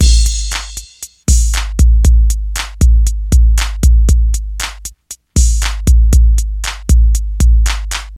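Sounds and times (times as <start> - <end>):
modern hip hop drum beat in A with kick tuned to A: 0.0 - 8.1.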